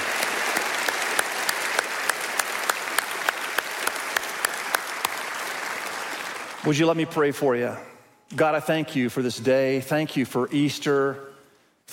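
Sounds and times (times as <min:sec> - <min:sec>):
large church congregation applauding: 0:00.0 - 0:07.2
speech: 0:06.6 - 0:11.3.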